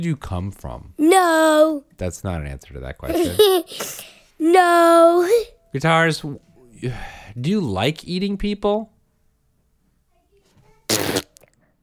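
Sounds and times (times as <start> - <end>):
speech: 0.0 - 8.9
loud raspy fart sound: 10.9 - 11.5.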